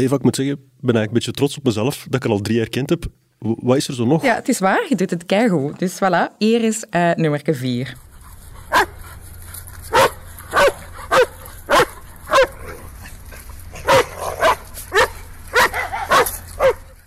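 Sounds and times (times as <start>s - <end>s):
speech: 0.0s - 8.1s
happy excited dog barking: 8.6s - 9.1s, 9.8s - 17.0s.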